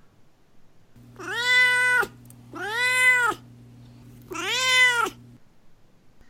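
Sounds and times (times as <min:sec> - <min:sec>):
faint steady hum: 0:00.0 - 0:06.2
cat meowing: 0:01.1 - 0:03.5, 0:04.2 - 0:05.4.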